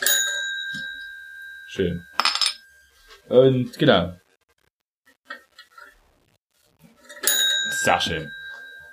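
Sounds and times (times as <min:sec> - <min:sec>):
small bell ringing: 0:00.0 - 0:02.8, 0:07.2 - 0:08.9
speech: 0:01.7 - 0:02.1, 0:03.3 - 0:04.2, 0:07.8 - 0:08.4.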